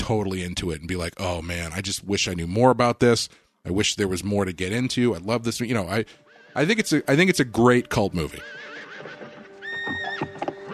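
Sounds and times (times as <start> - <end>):
speech: 0.1 - 9.2
horse neighing: 8.3 - 10.7.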